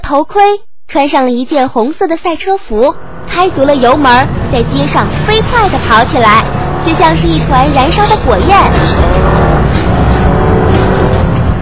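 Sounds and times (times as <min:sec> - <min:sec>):
speech: 0:00.1 - 0:09.6
motorcycle engine roaring while speeding along a street: 0:02.9 - 0:11.6.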